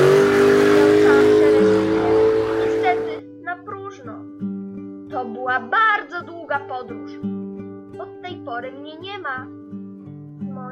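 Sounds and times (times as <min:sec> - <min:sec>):
car engine speeding away: 0:00.0 - 0:03.2
speech: 0:08.6 - 0:09.7.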